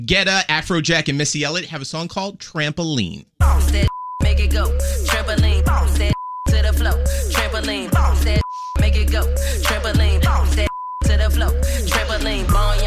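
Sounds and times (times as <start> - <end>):
speech: 0.0 - 3.9, 6.7 - 8.4, 9.0 - 12.8
loud bass-heavy pop track: 3.4 - 12.8
censor beeps over a swear word: 6.1 - 6.6, 8.4 - 8.8, 10.7 - 11.1.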